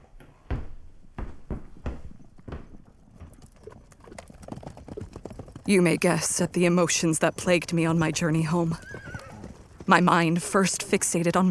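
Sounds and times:
horse hooves clip-clopping: 0.0 - 11.4
speech: 5.7 - 9.0, 9.9 - 11.4.

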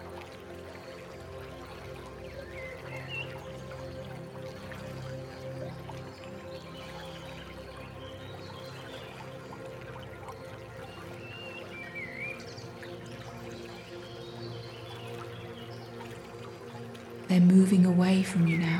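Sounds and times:
flowing stream water: 0.0 - 18.7
speech: 17.3 - 18.7.

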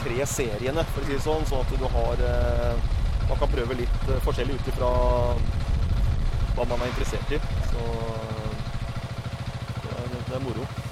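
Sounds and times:
motorcycle engine idling: 0.0 - 10.9
speech: 0.1 - 5.6, 6.6 - 8.3, 10.3 - 10.9.

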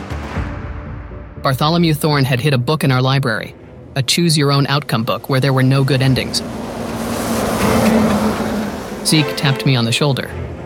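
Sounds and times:
speech: 1.4 - 6.7, 9.0 - 10.4
race car engine roaring at speed: 3.2 - 10.6.

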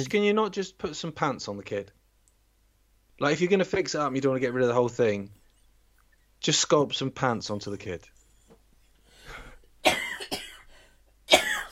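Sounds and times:
speech: 0.0 - 2.0, 3.2 - 5.4, 6.4 - 8.1
person coughing: 9.8 - 10.7, 11.3 - 11.7.

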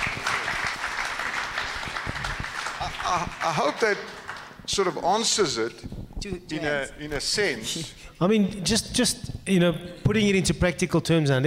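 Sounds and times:
room full of people clapping: 0.0 - 5.1
speech: 3.0 - 11.4.

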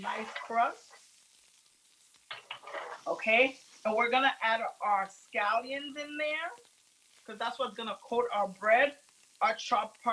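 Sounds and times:
speech: 0.0 - 0.9, 3.0 - 6.7, 7.3 - 10.1
butter sizzling in a hot pan: 0.0 - 10.1.

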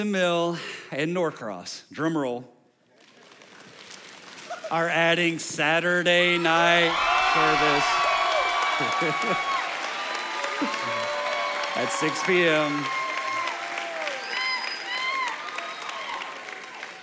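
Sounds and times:
man speaking into a microphone: 0.0 - 2.6, 4.7 - 8.1, 11.8 - 12.9
speech: 0.0 - 2.6, 4.7 - 8.1, 8.8 - 9.5, 10.6 - 11.0, 11.8 - 13.0
crowd applauding: 3.0 - 4.9, 6.4 - 17.0
whoops and cheers: 6.6 - 17.0.

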